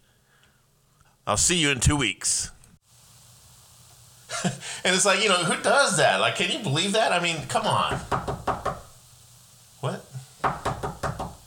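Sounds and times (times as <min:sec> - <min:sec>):
speech: 0:01.3 - 0:02.6, 0:04.4 - 0:08.3
knocking on a wooden door: 0:07.9 - 0:08.9, 0:10.4 - 0:11.4.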